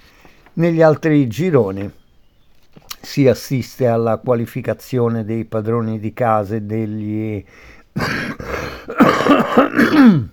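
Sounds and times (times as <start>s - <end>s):
speech: 0.6s - 2.0s, 3.2s - 8.3s, 8.9s - 10.3s
man clearing his throat: 8.0s - 10.3s
man coughing: 8.0s - 10.3s.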